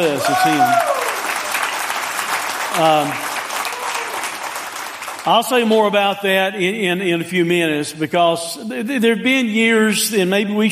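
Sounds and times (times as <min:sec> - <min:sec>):
speech: 0:00.0 - 0:00.9, 0:02.8 - 0:03.3, 0:05.2 - 0:10.6
audience applauding in a large room: 0:00.0 - 0:05.9.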